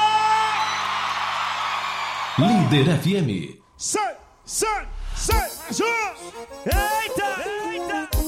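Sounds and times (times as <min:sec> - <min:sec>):
audience shouting and whooping: 0:00.0 - 0:02.9
speech: 0:02.4 - 0:08.1.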